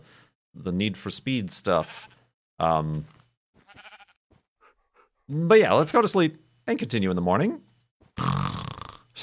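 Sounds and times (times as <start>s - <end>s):
speech: 0.6s - 3.2s, 5.3s - 8.4s
sheep bleating: 3.6s - 4.2s.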